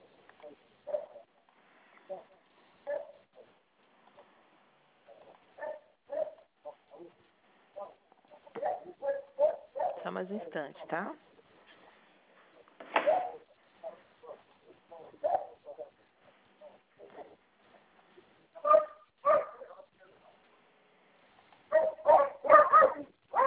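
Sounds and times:
several dogs barking: 0.8s - 1.3s, 2.8s - 3.3s, 5.1s - 10.0s, 13.0s - 17.4s, 18.6s - 19.9s, 21.7s - 23.4s
speech: 10.2s - 11.3s.

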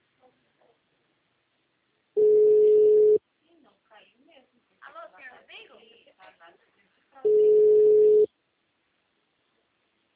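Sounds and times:
telephone busy tone after a dropped call: 2.2s - 3.2s, 7.3s - 8.3s.

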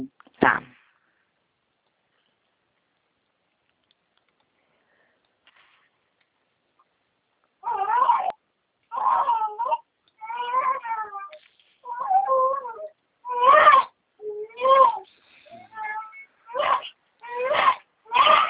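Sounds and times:
newborn baby girl crying: 7.6s - 18.4s.

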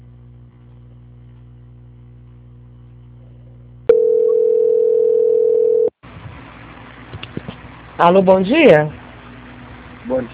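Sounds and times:
telephone line tone while a call is transferred: 3.9s - 6.0s
speech: 8.0s - 9.0s, 10.1s - 10.3s.

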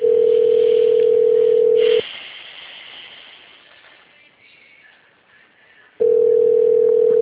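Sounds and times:
telephone ringback tone while a call connects: 0.0s - 2.0s, 6.0s - 7.1s
faint hiss: 0.3s - 6.0s.

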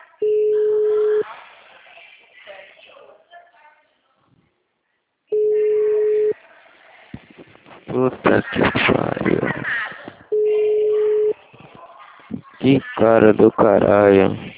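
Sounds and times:
ringback tone on an outgoing phone call: 0.2s - 1.2s, 5.3s - 6.4s, 10.3s - 11.4s
speech: 7.9s - 9.7s, 12.7s - 14.5s.

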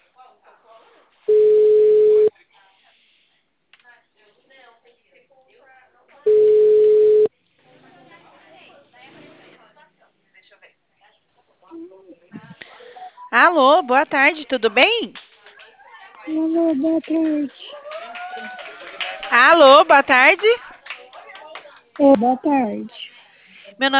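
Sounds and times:
phone line tone after a call is hung up: 1.3s - 2.3s, 6.3s - 7.3s
speech: 13.4s - 15.2s, 16.3s - 17.6s, 19.4s - 20.6s, 22.0s - 23.0s, 23.8s - 23.9s.

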